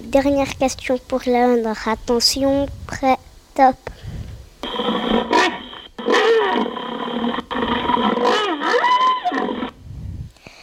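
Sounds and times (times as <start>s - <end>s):
speech: 0.1s - 4.1s
rhinoceros bellowing in an animal-sound guessing game: 4.6s - 9.8s.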